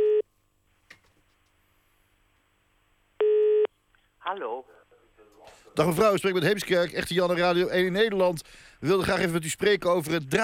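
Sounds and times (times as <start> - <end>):
telephone line beep on an outgoing call: 3.2 - 3.7
speech: 4.3 - 4.8, 5.4 - 10.4.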